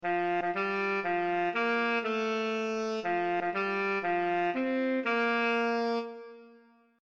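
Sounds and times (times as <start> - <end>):
saxophone melody: 0.0 - 6.8.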